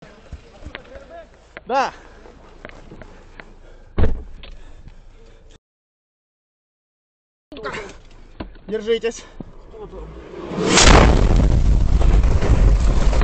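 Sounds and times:
speech: 0:01.7 - 0:02.1, 0:08.7 - 0:11.1
sharp thump: 0:04.0 - 0:04.3, 0:10.3 - 0:13.2
sustained roar of debris and rushing noise: 0:10.1 - 0:13.2
artillery blast near a medic's car in Ukraine during the war: 0:10.2 - 0:13.2.

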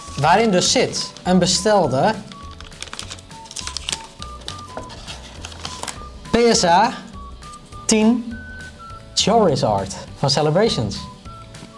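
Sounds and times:
speech: 0:00.2 - 0:02.3, 0:06.4 - 0:07.0, 0:07.9 - 0:08.4, 0:09.2 - 0:11.1
plastic bubble wrap envelope being opened: 0:02.2 - 0:06.1.

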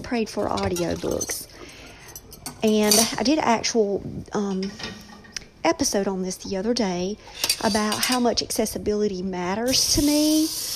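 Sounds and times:
speech: 0:00.1 - 0:01.6, 0:02.6 - 0:05.0, 0:05.6 - 0:10.7
dishes and cutlery clinking while loaded into a dishwasher: 0:00.4 - 0:03.4, 0:04.6 - 0:05.4, 0:07.3 - 0:08.4.

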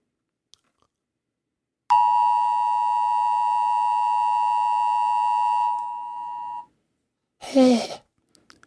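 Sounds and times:
long steady electronic beep from a mobile phone: 0:01.9 - 0:06.7.

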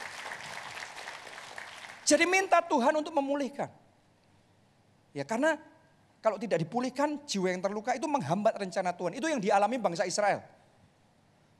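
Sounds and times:
crowd applauding: 0:00.0 - 0:02.5
speech: 0:02.1 - 0:03.8, 0:05.2 - 0:10.6.

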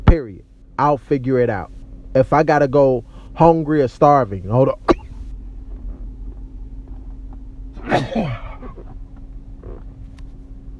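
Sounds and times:
low rumbling hum: 0:00.0 - 0:10.7
speech: 0:00.1 - 0:04.9
person sneezing: 0:07.8 - 0:08.9.

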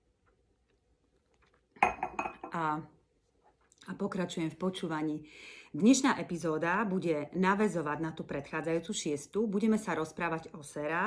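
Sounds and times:
coffee cup and dishes clinking: 0:01.8 - 0:02.6
speech: 0:02.6 - 0:03.0, 0:03.9 - 0:11.0.

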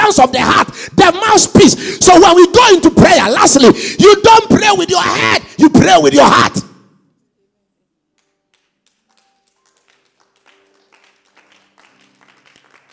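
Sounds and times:
speech: 0:00.1 - 0:06.7
scattered clapping from a small crowd: 0:08.2 - 0:12.9.

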